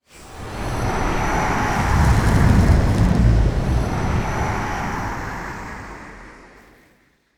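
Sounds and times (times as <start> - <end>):
boss monster: 0.6 - 6.1.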